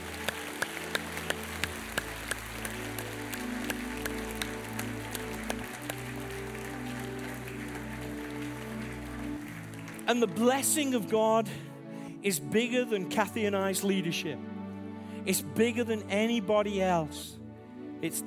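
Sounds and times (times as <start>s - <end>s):
congregation applauding: 0.0s - 11.2s
sustained low keyboard chords droning: 0.0s - 18.2s
speech: 10.1s - 14.5s, 15.2s - 17.4s, 18.0s - 18.2s.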